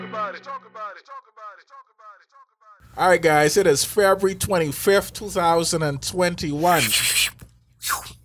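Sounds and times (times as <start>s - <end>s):
speech: 0.6s - 2.0s, 2.9s - 8.1s
person yawning: 6.6s - 8.1s.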